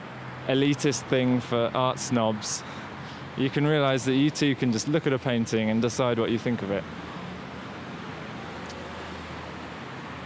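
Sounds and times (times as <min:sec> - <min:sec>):
road traffic roar with low engine rumble: 0:00.0 - 0:10.2
speech: 0:00.5 - 0:07.1.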